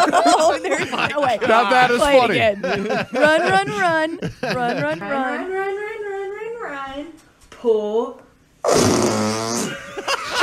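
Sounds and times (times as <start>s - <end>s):
laughter: 0.0s - 5.4s, 9.6s - 10.4s
speech: 0.6s - 5.9s, 6.8s - 10.2s
baby making loud buzzy fart-like noise: 8.6s - 9.8s.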